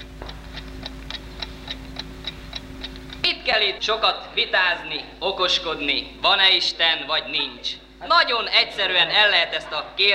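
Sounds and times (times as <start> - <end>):
small wristwatch ticking after being unbuckled from the wrist: 0.0 - 4.0
faint low hum: 0.0 - 10.1
speech: 3.5 - 10.1.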